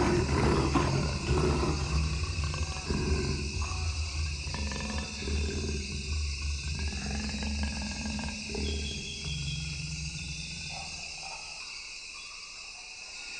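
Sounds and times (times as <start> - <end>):
Amazon jaguar roaring: 0.0 - 11.5
steady hum of insects: 0.0 - 13.3.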